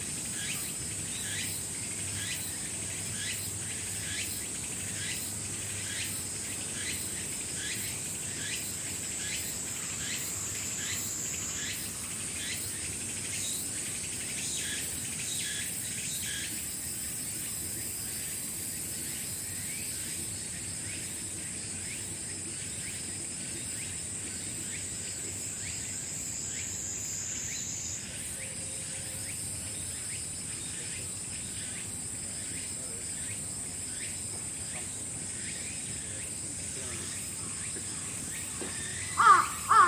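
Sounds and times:
insects chirping at night at Fushimi Inari Taisha in Kyoto: 0:00.0 - 0:39.8.

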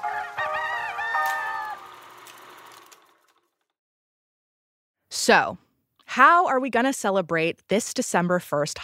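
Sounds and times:
rooster crowing: 0:00.0 - 0:02.1
speech: 0:05.3 - 0:08.8.

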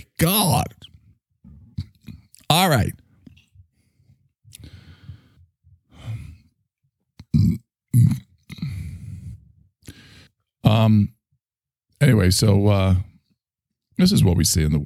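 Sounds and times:
speech: 0:00.0 - 0:00.8, 0:02.5 - 0:03.0, 0:10.7 - 0:11.2, 0:12.0 - 0:13.1, 0:14.0 - 0:14.8
loud burps: 0:07.2 - 0:08.4.

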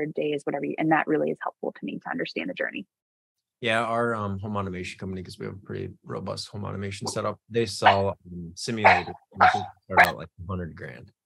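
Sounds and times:
speech: 0:00.0 - 0:03.0, 0:03.6 - 0:11.2
male dog barking: 0:07.8 - 0:08.2, 0:08.8 - 0:10.2.

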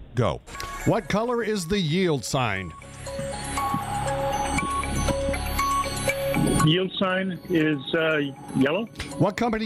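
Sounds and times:
speech: 0:00.2 - 0:03.2, 0:06.6 - 0:09.6
quiz countdown clock ticking: 0:00.5 - 0:09.6
busy droning electronic bed: 0:02.6 - 0:09.6.

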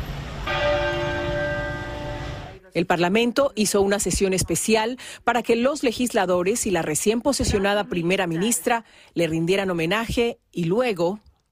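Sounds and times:
single deep church bell ringing: 0:00.4 - 0:02.6
speech: 0:02.8 - 0:11.4.

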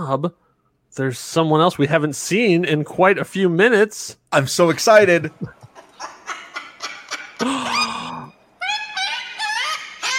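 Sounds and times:
speech: 0:00.0 - 0:05.6
cockatoo squawking and screeching: 0:05.9 - 0:10.1.

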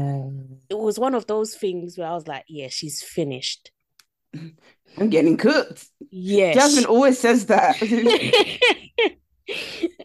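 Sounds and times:
speech: 0:00.9 - 0:09.1
laughter: 0:07.6 - 0:10.0
harsh rasping coughing fit: 0:07.8 - 0:08.9, 0:09.5 - 0:10.0.

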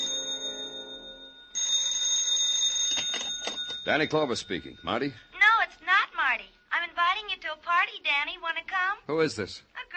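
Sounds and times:
loud metallic bell ringing: 0:00.0 - 0:06.7
speech: 0:03.9 - 0:05.3, 0:08.0 - 0:09.7.

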